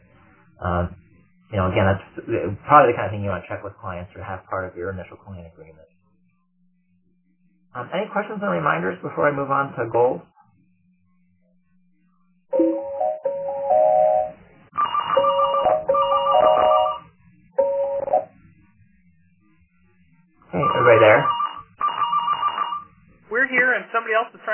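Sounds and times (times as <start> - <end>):
speech: 0.6 - 6.0, 7.7 - 10.3, 20.5 - 21.4, 23.3 - 24.5
phone ringing with electronic tone bursts: 12.5 - 18.3, 20.5 - 22.9.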